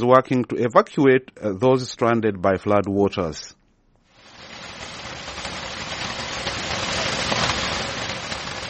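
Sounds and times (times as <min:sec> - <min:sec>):
speech: 0:00.0 - 0:03.6
heavy rain pouring: 0:04.1 - 0:08.6.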